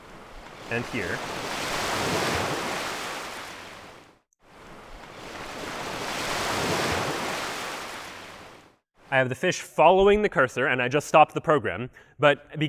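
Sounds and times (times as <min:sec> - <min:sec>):
ocean wave sound effect of rushing surf: 0:00.0 - 0:08.7
speech: 0:00.7 - 0:02.2, 0:09.1 - 0:12.6.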